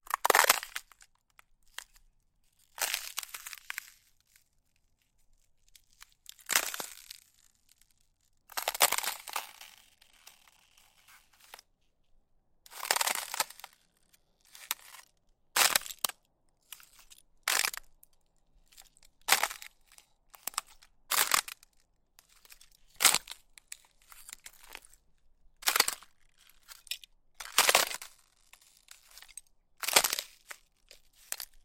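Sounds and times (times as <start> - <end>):
footsteps on ice: 0.1 - 1.0, 2.8 - 4.4, 5.8 - 7.5, 8.5 - 11.7, 12.7 - 17.9, 18.7 - 21.7, 22.3 - 25.0, 25.6 - 31.6.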